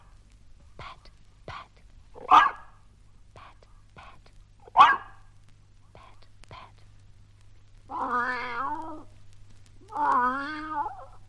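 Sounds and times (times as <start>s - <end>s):
faint low hum: 0.0s - 11.2s
cat meowing: 7.9s - 9.1s, 9.8s - 11.2s.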